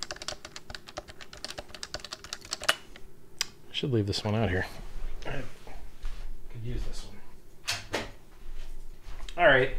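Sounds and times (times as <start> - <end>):
typing on a compact tenkeyless mechanical keyboard without silencing rings: 0.0 - 2.8
speech: 3.8 - 5.6, 6.6 - 7.2, 9.4 - 9.7.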